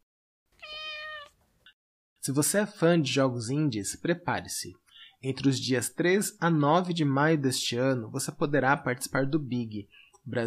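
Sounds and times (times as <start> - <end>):
cat meowing: 0.6 - 1.4
speech: 2.3 - 10.4.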